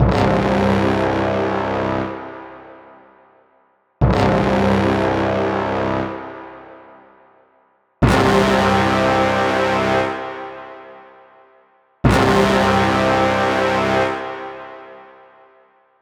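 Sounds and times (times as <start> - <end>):
orchestral brass stabs in C for cinematic trailers: 0.0 - 2.6, 4.0 - 6.8, 8.0 - 10.9, 12.0 - 15.0.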